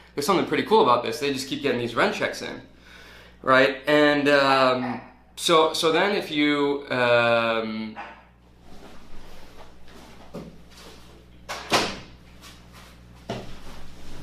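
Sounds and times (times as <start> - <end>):
speech: 0.2 - 2.7, 3.4 - 8.2
door being shut: 11.5 - 12.1.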